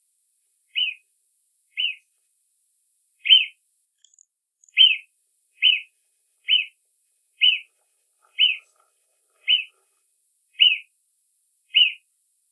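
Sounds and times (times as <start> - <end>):
marmot whistling: 0.7 - 1.0, 1.8 - 2.0, 3.2 - 3.6, 4.7 - 5.9, 6.5 - 6.7, 7.4 - 7.7, 8.3 - 8.7, 9.4 - 9.7, 10.6 - 10.9, 11.7 - 12.0.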